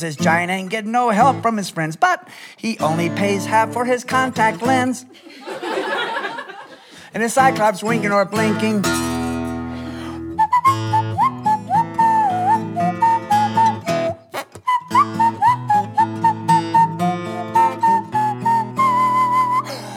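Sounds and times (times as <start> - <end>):
speech: 0.0 - 5.9, 7.1 - 9.1
laughter: 5.1 - 7.0
steady instrumental backing: 7.4 - 19.9
clear bright whistled melody: 9.6 - 19.9.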